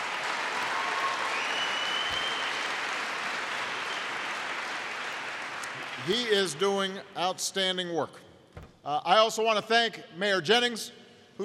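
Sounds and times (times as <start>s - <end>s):
sizable crowd applauding: 0.0s - 6.6s
speech: 6.0s - 11.4s.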